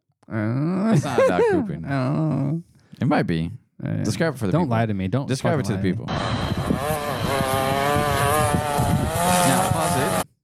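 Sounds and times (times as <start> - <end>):
speech: 0.3 - 7.6
weed whacker engine running while cutting: 6.2 - 10.2.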